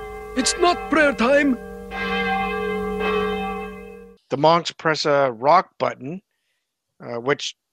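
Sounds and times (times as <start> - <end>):
large monastery bell ringing: 0.0 - 4.2
speech: 0.4 - 2.4, 4.3 - 6.2, 7.0 - 7.6.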